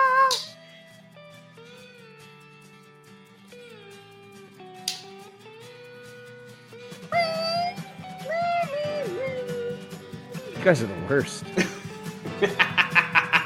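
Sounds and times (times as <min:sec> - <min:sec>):
person imitating cat meowing: 0:00.0 - 0:00.5
music: 0:00.0 - 0:13.4
speech: 0:10.6 - 0:11.7
laughter: 0:11.5 - 0:13.4.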